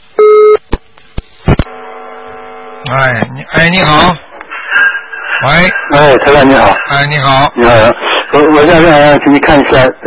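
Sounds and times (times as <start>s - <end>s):
soft telephone line hum: 0.0s - 5.9s
telephone busy tone after a call disconnects: 0.2s - 0.6s
speech: 2.9s - 4.2s, 5.4s - 10.0s.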